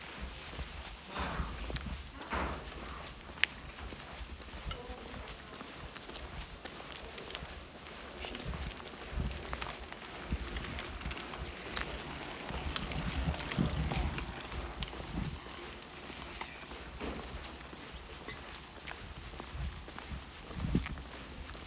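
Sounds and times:
footsteps crunching on a dirt trail with small stones during a hike: 0:00.0 - 0:21.6
faint voices of other hikers: 0:04.6 - 0:18.2.

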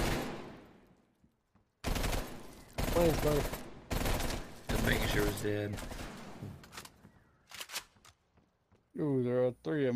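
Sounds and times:
video game gunfire as a player shoots at a box: 0:00.0 - 0:00.6, 0:01.8 - 0:06.6
speech: 0:03.0 - 0:03.6, 0:04.8 - 0:06.0, 0:09.0 - 0:09.9.

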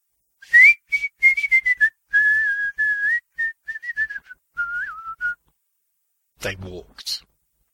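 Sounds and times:
person whistling a bouncy calliope-style tune: 0:00.4 - 0:05.5
speech: 0:06.4 - 0:07.3.

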